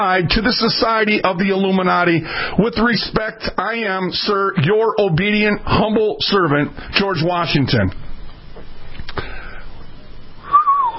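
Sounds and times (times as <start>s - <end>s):
speech: 0.0s - 8.0s
short clear whistle sliding downward in pitch: 10.4s - 10.9s.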